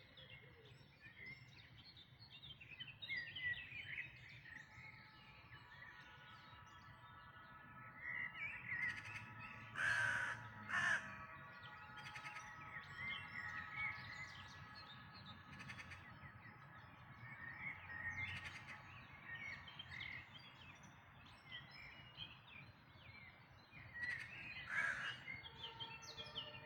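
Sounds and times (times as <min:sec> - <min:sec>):
dawn chorus of birds singing: 0:00.0 - 0:26.6
crow cawing harshly: 0:08.9 - 0:11.3, 0:24.7 - 0:25.2.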